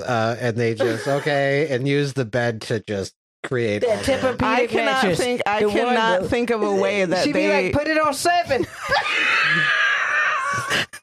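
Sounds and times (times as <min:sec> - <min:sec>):
speech: 0:00.0 - 0:09.8, 0:10.6 - 0:11.0
laughter: 0:00.6 - 0:01.8, 0:08.4 - 0:09.8
woman gasping harshly: 0:03.8 - 0:04.4
woman screaming: 0:08.9 - 0:10.7.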